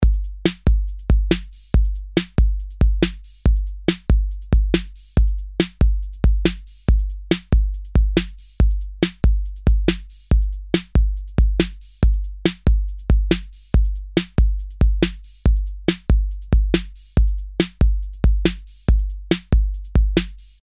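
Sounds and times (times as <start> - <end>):
808 drum machine through SS preamp: 0.0 - 20.6.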